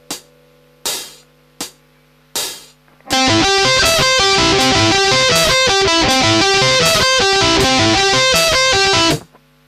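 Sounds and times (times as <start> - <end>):
advanced arpeggio: 3.1 - 9.2.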